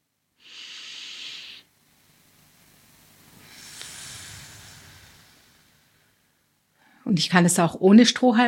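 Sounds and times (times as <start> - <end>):
slow breathing in and delayed breathing out in a breathing exercise: 0.4 - 1.7, 3.2 - 7.0
speech: 7.1 - 8.4.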